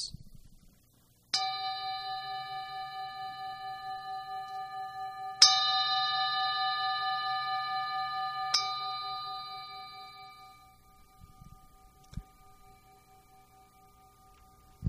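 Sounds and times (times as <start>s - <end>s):
meditation gong ringing: 1.4s - 14.8s.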